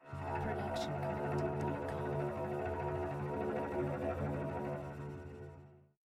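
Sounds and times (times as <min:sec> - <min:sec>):
cello shivering tremolo: 0:00.1 - 0:05.4.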